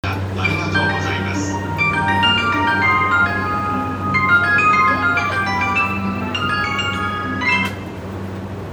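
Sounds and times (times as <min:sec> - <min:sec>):
train sounds: 0:00.0 - 0:08.7.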